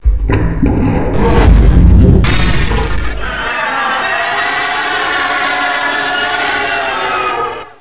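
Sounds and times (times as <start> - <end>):
mortar fire: 1.1 - 3.4
laughter: 2.7 - 7.7.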